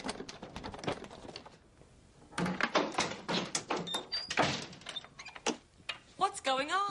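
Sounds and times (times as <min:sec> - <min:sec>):
stuck door being rattled and jerked: 0:00.0 - 0:01.6, 0:02.3 - 0:05.6.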